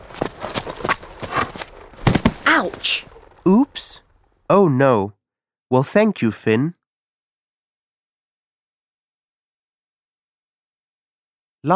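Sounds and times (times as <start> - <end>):
horse hooves clip-clopping in a quick rhythm: 0.0 - 4.3
speech: 2.6 - 6.8.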